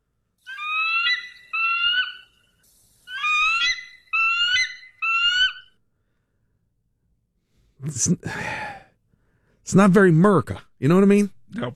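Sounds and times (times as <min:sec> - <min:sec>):
American bald eagle chattering screech: 0:00.4 - 0:05.8
speech: 0:07.8 - 0:08.6, 0:09.7 - 0:11.7.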